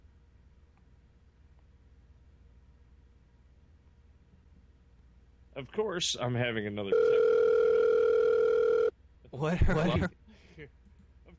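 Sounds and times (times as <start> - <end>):
speech: 5.6 - 7.3, 9.3 - 10.8
phone ringtone: 6.9 - 8.9.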